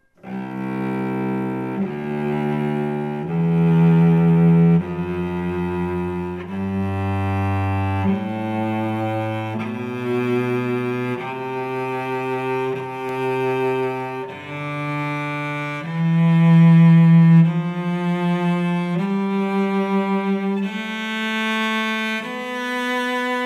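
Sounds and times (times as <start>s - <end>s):
cello: 0.0s - 23.4s.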